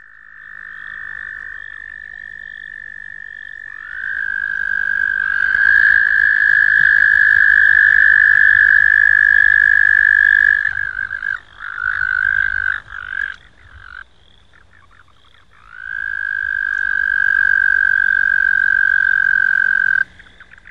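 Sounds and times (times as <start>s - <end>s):
frog croaking: 0.0s - 20.7s.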